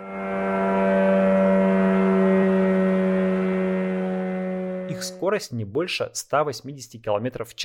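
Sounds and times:
kamikaze drone two-stroke engine buzzing overhead: 0:00.0 - 0:05.4
speech: 0:04.9 - 0:07.6.

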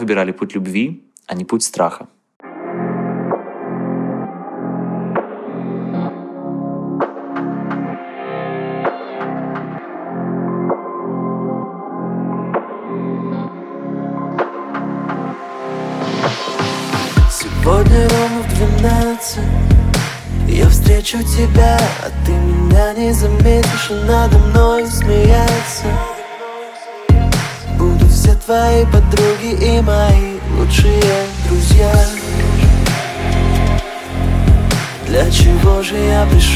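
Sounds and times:
speech: 0:00.0 - 0:02.2, 0:21.1 - 0:26.1, 0:28.2 - 0:32.4, 0:35.1 - 0:36.5
layered synth chords of a pop song: 0:02.4 - 0:36.5
steady pulsing low beat of a pop song: 0:17.2 - 0:21.8, 0:22.6 - 0:26.1, 0:27.1 - 0:29.2, 0:29.9 - 0:36.5.

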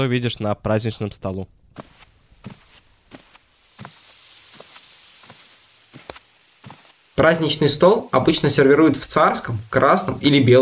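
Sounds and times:
speech: 0:00.0 - 0:02.6, 0:07.2 - 0:10.6
soft hiss of room noise: 0:00.0 - 0:10.6
footsteps on a hard floor walking into a kitchen: 0:01.7 - 0:07.1.

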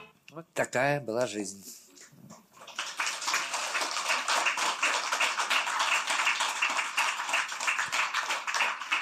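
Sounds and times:
speech: 0:00.6 - 0:01.8
crowd applauding: 0:02.5 - 0:08.9.

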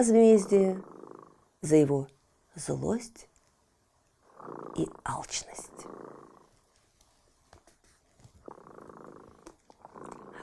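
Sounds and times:
speech: 0:00.0 - 0:00.9, 0:01.6 - 0:03.3, 0:04.4 - 0:06.1
cat purring: 0:00.0 - 0:01.8, 0:04.2 - 0:10.4.

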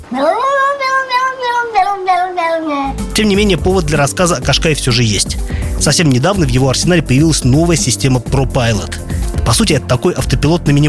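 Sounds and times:
speech: 0:00.1 - 0:00.4, 0:03.2 - 0:10.8
cat meowing: 0:00.1 - 0:03.0.

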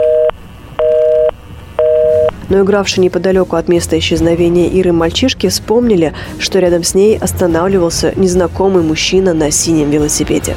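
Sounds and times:
dual-pitch telephone tone beeps of an unanswered call: 0:00.0 - 0:02.4
speech: 0:02.5 - 0:10.5.

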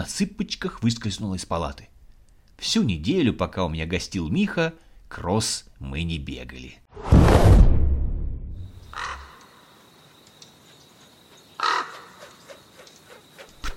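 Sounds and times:
speech: 0:00.0 - 0:01.9, 0:02.6 - 0:07.7
loud rushing whoosh: 0:07.0 - 0:08.6
crow cawing harshly: 0:08.9 - 0:09.7, 0:11.6 - 0:12.6.

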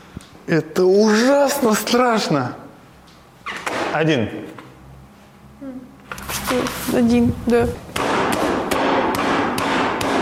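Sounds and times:
speech: 0:00.5 - 0:02.6, 0:03.9 - 0:04.6, 0:06.5 - 0:08.1
hammer striking a mobile phone: 0:08.0 - 0:10.1.

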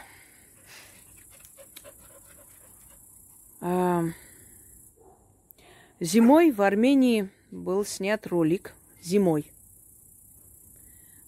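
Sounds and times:
dog panting: 0:00.4 - 0:03.4
speech: 0:03.6 - 0:04.3, 0:06.0 - 0:09.6.

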